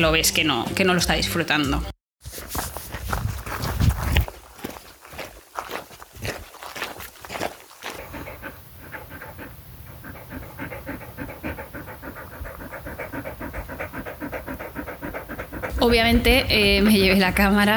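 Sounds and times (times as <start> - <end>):
speech: 0.0 - 2.5, 15.8 - 17.7
scuffling movement: 2.2 - 9.4, 10.7 - 17.7
dog panting heavily and rapidly: 2.6 - 17.7.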